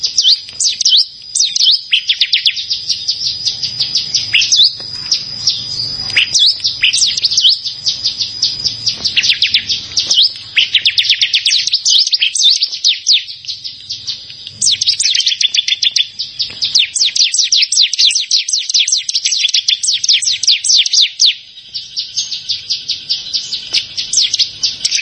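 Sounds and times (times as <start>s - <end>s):
Bar-winged prinia singing a fast chattering run: 0.0s - 24.9s.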